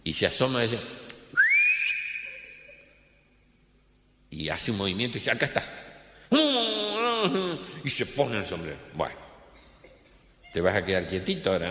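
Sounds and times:
speech: 0:00.0 - 0:01.0, 0:04.4 - 0:09.2, 0:10.5 - 0:11.6
short human whistle: 0:01.3 - 0:02.8.

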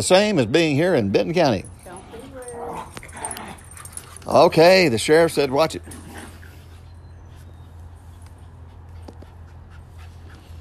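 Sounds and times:
speech: 0:00.0 - 0:01.8, 0:04.2 - 0:06.0
dogs whimpering and panting: 0:01.6 - 0:10.5.

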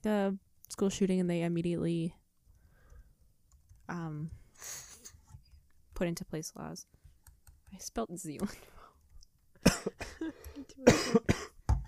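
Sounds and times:
speech: 0:00.0 - 0:02.2, 0:03.9 - 0:04.8, 0:06.0 - 0:07.0, 0:07.7 - 0:08.7, 0:09.8 - 0:11.5
person coughing harshly: 0:09.6 - 0:11.6.

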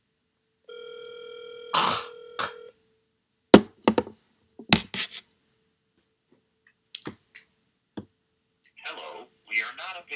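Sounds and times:
steady electronic telephone tone: 0:00.7 - 0:02.7
speech: 0:09.7 - 0:10.1.

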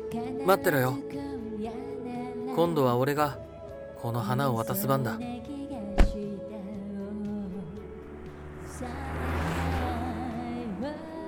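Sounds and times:
speech: 0:00.1 - 0:01.8, 0:02.6 - 0:03.4, 0:04.0 - 0:05.5
sharp click: 0:06.0 - 0:06.2
car engine revving as the car drives away: 0:07.4 - 0:11.2.

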